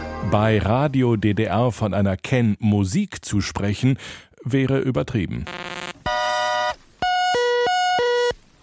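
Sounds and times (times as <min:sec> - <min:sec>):
speech: 0:00.3 - 0:05.6
buzzy synthetic electronic burst: 0:05.5 - 0:06.7
loud alternating two-pitch beeps: 0:06.1 - 0:08.4.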